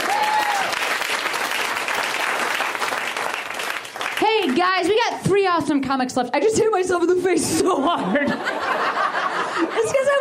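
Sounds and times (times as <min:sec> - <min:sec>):
audience applause at a comedy show: 0:00.0 - 0:04.6
speech: 0:04.6 - 0:10.1
laughter: 0:07.8 - 0:10.1.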